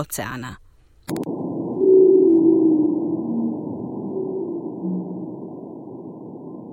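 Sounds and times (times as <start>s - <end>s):
Chagos pygmy blue whale song recorded underwater by nuclear-bomb detectors on the Indian Ocean floor: 1.4s - 6.7s.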